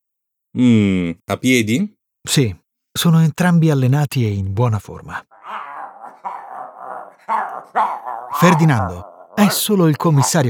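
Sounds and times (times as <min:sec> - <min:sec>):
speech: 0:00.5 - 0:05.6, 0:07.3 - 0:10.4
dog growling and barking: 0:05.3 - 0:10.4.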